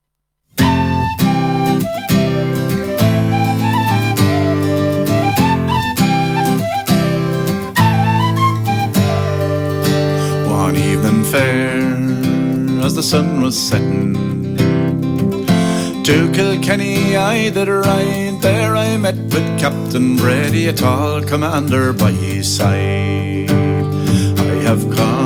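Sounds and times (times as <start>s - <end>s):
bright tin whistle playing an ornamented Irish folk melody: 0.6s - 11.5s
steady strummed guitar chords: 0.6s - 21.5s
speech: 13.1s - 14.2s, 16.0s - 24.0s, 24.7s - 25.2s.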